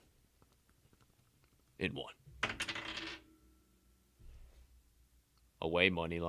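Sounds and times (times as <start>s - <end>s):
speech: 1.8s - 2.2s, 5.6s - 6.2s
die clattering and rattling across a hard desk surface: 2.4s - 3.3s.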